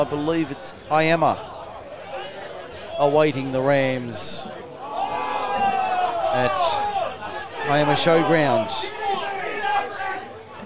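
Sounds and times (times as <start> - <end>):
speech: 0.0 - 1.5, 3.0 - 4.6, 6.3 - 6.9, 7.6 - 9.0
large crowd cheering at a football match: 0.0 - 10.6.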